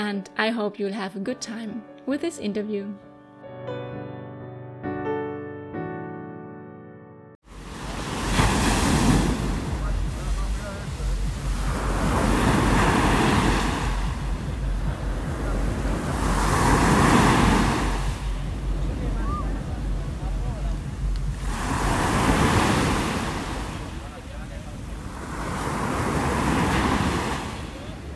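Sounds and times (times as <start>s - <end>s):
speech: 0.0s - 3.9s
musical intro: 1.8s - 25.4s
Mediterranean sea waves washing ashore: 7.4s - 28.1s.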